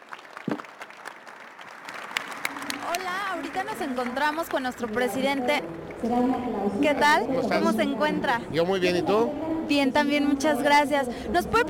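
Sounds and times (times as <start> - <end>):
audience applause for conference panelists: 0.0 - 6.0
faint crowd murmur: 2.3 - 11.6
speech: 3.5 - 11.6.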